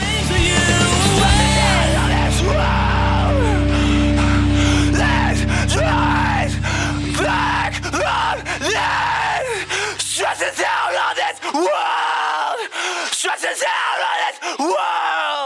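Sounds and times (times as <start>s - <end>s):
sustained low instrumental drone: 0.0s - 11.3s
raw strained screaming vocals of an emo song: 0.8s - 15.4s.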